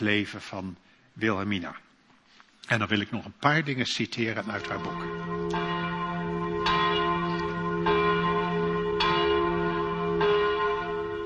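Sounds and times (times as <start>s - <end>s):
speech: 0.0s - 1.9s, 2.6s - 5.6s
church bells ringing in an overlapping peal: 4.4s - 11.2s.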